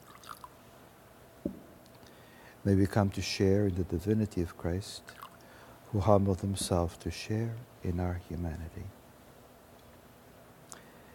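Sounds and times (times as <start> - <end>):
water dripping into a chalice of wine: 0.0 - 0.5, 5.1 - 5.5
speech: 2.6 - 5.2, 5.9 - 9.0.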